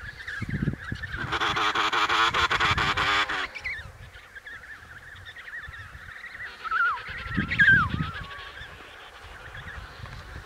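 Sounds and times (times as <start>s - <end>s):
emperor penguin calling in Antarctica: 0.9s - 3.9s, 5.6s - 10.1s.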